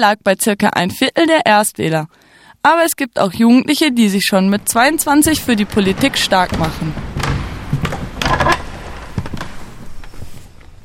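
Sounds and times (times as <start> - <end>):
speech: 0.0 - 7.1
dull knocks and thuds of heavy council chamber door swinging: 4.5 - 9.9
hinges of heavy city council chamber door creaking: 4.5 - 10.8.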